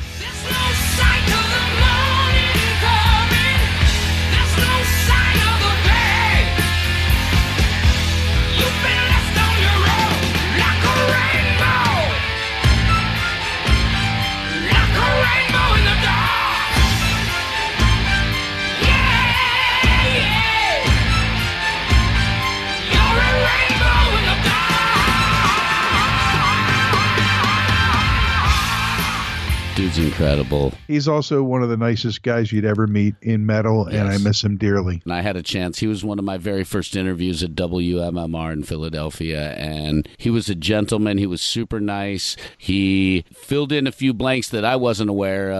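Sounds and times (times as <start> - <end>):
dense distorted heavy metal guitars: 0.0 - 31.0, 33.8 - 34.6
heavy metal singer's high sustained scream: 0.1 - 6.6, 8.5 - 18.1, 18.7 - 21.9, 22.8 - 29.8
speech: 30.3 - 45.5.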